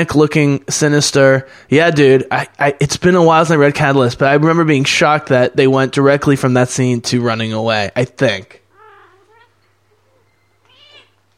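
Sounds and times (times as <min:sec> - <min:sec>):
speech: 0:00.0 - 0:08.6
steady low electrical hum: 0:00.0 - 0:11.3
cat meowing: 0:08.7 - 0:11.2.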